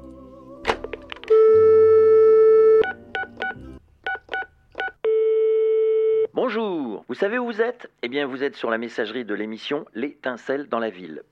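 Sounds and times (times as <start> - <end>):
long steady telephone dial tone: 1.3 - 3.6, 5.0 - 6.3
telephone keypad dialing beeps in a radio show jingle: 2.1 - 6.3
speech: 6.4 - 11.2.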